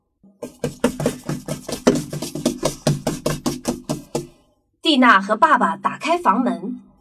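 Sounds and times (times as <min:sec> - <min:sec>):
dog scratching and scraping at a wooden door: 0:00.4 - 0:04.2
speech: 0:04.9 - 0:06.8.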